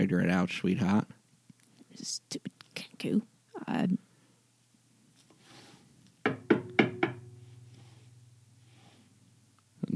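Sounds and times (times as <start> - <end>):
speech: 0.0 - 1.2, 2.0 - 4.1
knocking on the door of a house: 6.3 - 7.5
low lingering hum: 6.4 - 9.8.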